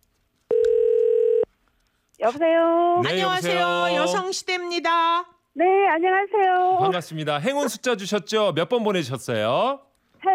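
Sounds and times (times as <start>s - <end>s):
telephone tone as a call is placed: 0.5s - 1.5s
speech: 2.2s - 9.9s.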